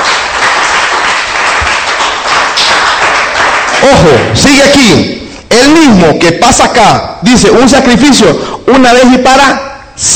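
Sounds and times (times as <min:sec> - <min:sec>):
audience clapping for the King: 0:00.0 - 0:04.9
speech: 0:03.8 - 0:10.1.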